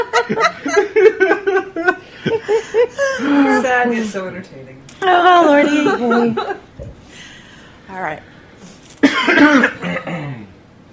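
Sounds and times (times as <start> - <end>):
speech: 0.0 - 2.6, 3.2 - 6.6, 7.9 - 8.3, 9.1 - 10.4
laughter: 0.0 - 3.7, 5.1 - 6.9
person coughing: 9.0 - 10.5.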